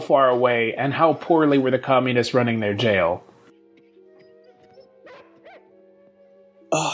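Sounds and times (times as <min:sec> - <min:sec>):
speech: 0:00.1 - 0:03.3
dog barking: 0:05.0 - 0:05.7.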